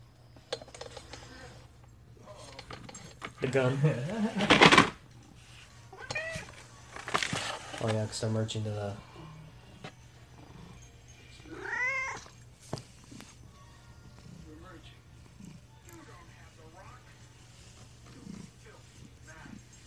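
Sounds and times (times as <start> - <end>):
speech: 3.4 - 5.0, 7.8 - 9.1
domestic cat meowing: 5.9 - 6.5, 11.4 - 12.4.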